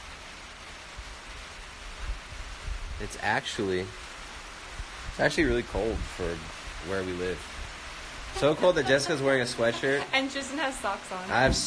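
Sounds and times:
light rain falling: 0:00.0 - 0:11.6
speech: 0:03.0 - 0:04.0, 0:05.2 - 0:07.5, 0:08.4 - 0:11.6
laughter: 0:08.3 - 0:10.4
low thumps: 0:11.3 - 0:11.6.

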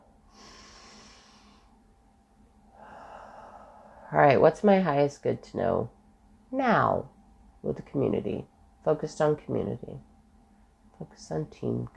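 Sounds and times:
person taking a slow deep breath: 0:00.2 - 0:01.7, 0:02.7 - 0:04.1
speech: 0:04.1 - 0:10.1, 0:11.0 - 0:11.9.

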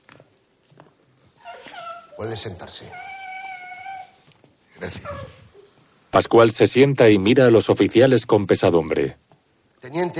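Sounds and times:
dog on a leash whining while pulled into a hall: 0:01.3 - 0:05.8
speech: 0:02.2 - 0:03.2, 0:04.8 - 0:05.4, 0:06.1 - 0:09.2, 0:09.9 - 0:10.1.

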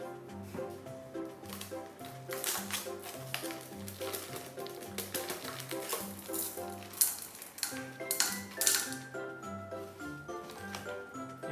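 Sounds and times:
music: 0:00.0 - 0:11.5
small hard pieces of pine resin rattling in an opened box: 0:02.3 - 0:09.1.

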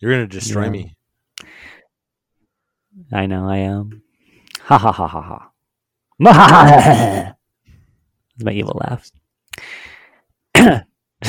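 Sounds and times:
speech: 0:00.0 - 0:01.8, 0:03.0 - 0:04.0, 0:04.6 - 0:05.5, 0:06.2 - 0:07.4, 0:08.4 - 0:09.8, 0:10.6 - 0:10.9
harsh throaty rasping coughs: 0:06.6 - 0:07.4, 0:10.5 - 0:11.2.

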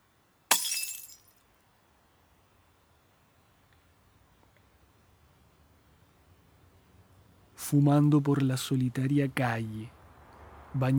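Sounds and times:
glass shattering on pavement: 0:00.5 - 0:01.3
speech: 0:07.7 - 0:10.0, 0:10.8 - 0:10.9.

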